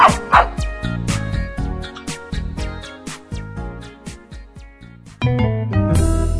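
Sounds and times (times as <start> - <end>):
dog barking in short yaps: 0.0 - 0.6
bright music: 0.0 - 6.3.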